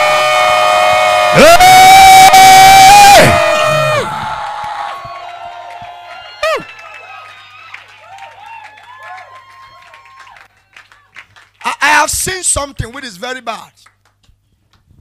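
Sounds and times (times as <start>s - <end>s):
person whooping: 0.0s - 4.4s, 6.4s - 6.8s
audience cheering: 0.0s - 11.1s
speech: 1.4s - 1.7s, 12.6s - 13.9s
audience clapping: 3.6s - 14.9s.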